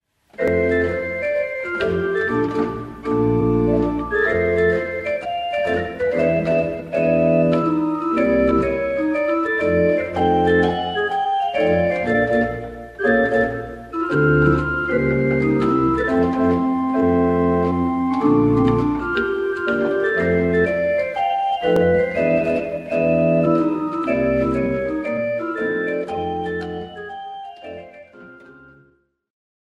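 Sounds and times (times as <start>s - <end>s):
jazz pop music: 0.4s - 28.7s.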